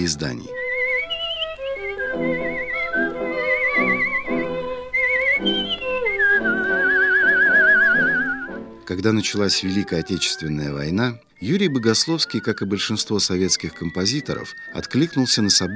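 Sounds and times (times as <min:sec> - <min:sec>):
speech: 0:00.0 - 0:00.6, 0:02.2 - 0:02.5, 0:08.9 - 0:15.7
bright vibrato-laden whistled tango melody: 0:00.0 - 0:10.4, 0:11.4 - 0:15.7.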